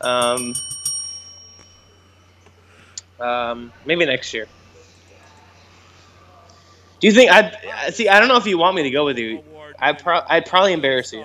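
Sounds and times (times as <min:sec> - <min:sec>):
speech: 0:00.0 - 0:00.8, 0:03.2 - 0:04.6, 0:07.0 - 0:11.2
bell ringing: 0:00.0 - 0:02.5.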